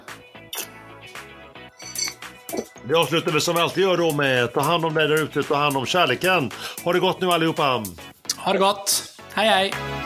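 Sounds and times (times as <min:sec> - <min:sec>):
glasses clinking in a toast: 0:01.8 - 0:02.8
speech: 0:02.5 - 0:10.0.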